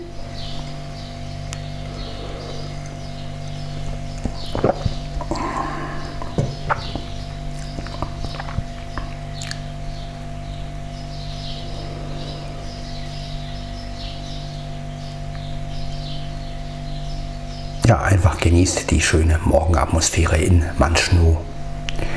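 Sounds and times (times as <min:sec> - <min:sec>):
faint bird chirps in morning ambience: 0:00.0 - 0:17.8
steady low hum: 0:00.0 - 0:22.1
knocks: 0:06.2 - 0:07.2
speech: 0:18.1 - 0:21.5.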